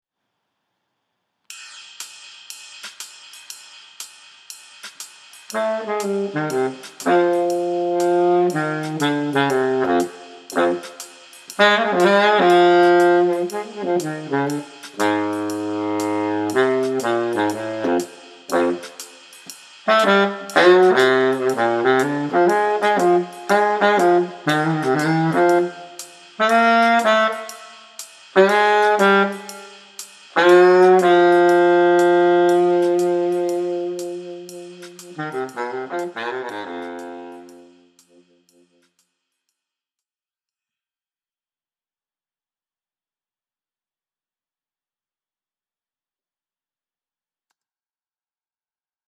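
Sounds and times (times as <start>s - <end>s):
baritone saxophone playing jazz swing: 5.5s - 19.2s, 19.9s - 38.2s.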